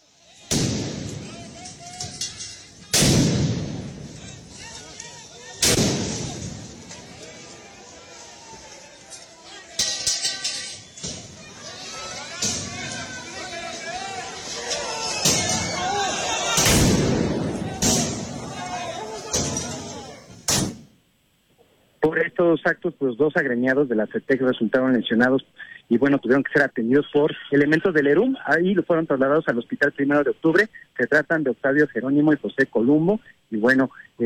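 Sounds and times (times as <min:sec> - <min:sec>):
crowd noise: 0:00.0 - 0:20.8
people shouting: 0:00.1 - 0:20.5
police firing rockets and tear gas at protesters: 0:00.5 - 0:04.5, 0:05.6 - 0:07.0, 0:15.2 - 0:18.6, 0:19.3 - 0:20.9
speech: 0:22.4 - 0:34.2.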